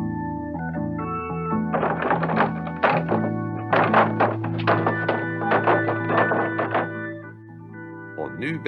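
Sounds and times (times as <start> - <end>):
steady musical backing: 0.2 - 8.6
knocking in uneven rhythm on a wooden door: 1.7 - 7.2
speech: 8.4 - 8.6.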